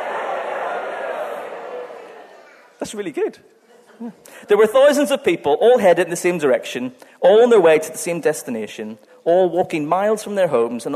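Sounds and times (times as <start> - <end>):
audience chattering and murmuring: 0.0 - 4.3
speech: 2.8 - 10.9.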